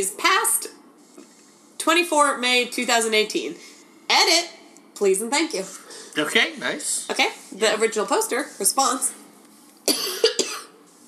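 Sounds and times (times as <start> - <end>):
speech: 0.0 - 0.5, 1.9 - 9.2
harsh person coughing: 9.9 - 10.8.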